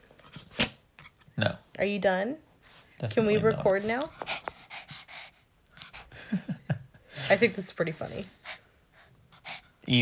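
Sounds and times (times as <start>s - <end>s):
speech: 1.4s - 4.3s, 7.3s - 8.4s, 9.9s - 10.0s
female dog panting heavily into a phone: 2.6s - 9.9s.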